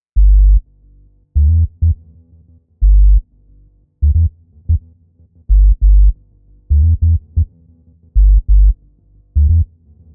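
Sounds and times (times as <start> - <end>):
E sub bass: 0.2 - 2.1, 2.8 - 10.1.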